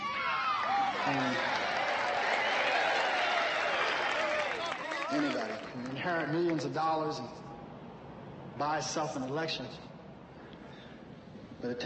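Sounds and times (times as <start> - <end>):
cheers and whoops: 0.0 - 5.4
large crowd applauding: 0.7 - 6.8
speech: 6.0 - 7.4, 8.6 - 9.9, 11.6 - 11.8.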